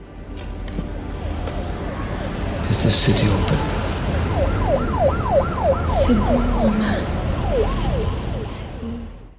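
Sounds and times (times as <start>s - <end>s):
rumbling processed city noise: 0.0s - 9.3s
speech: 2.7s - 3.8s, 4.4s - 7.9s
fast looping siren: 3.4s - 9.3s.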